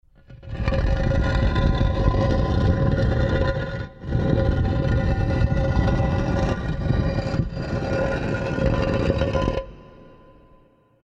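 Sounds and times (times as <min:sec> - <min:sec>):
stone sliding door: 0:00.3 - 0:09.7.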